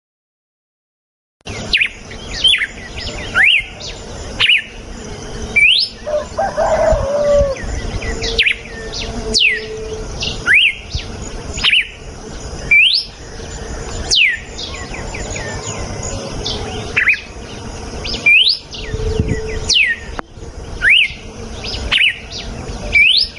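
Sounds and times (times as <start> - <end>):
background hiss: 1.5 - 23.3
female red-cowled cardinal natural song with rising and falling slurred whistled phrases: 1.6 - 4.7, 7.5 - 10.8, 12.7 - 13.2, 14.1 - 15.8, 18.1 - 20.2, 20.8 - 23.3.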